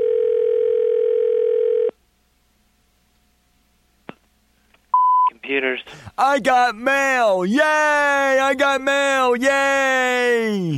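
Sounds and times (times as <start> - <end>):
telephone ringing tone: 0.0 - 1.9
speech: 5.5 - 10.7.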